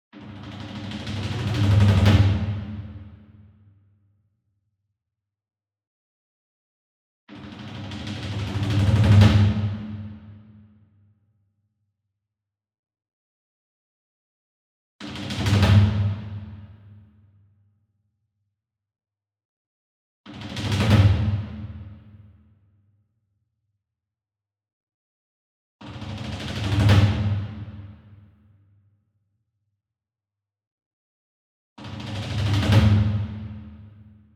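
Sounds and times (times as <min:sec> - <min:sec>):
single taiko drum roll with hard beater: 0:00.3 - 0:02.9, 0:07.5 - 0:09.9, 0:20.5 - 0:21.8, 0:25.9 - 0:27.8, 0:31.9 - 0:33.6.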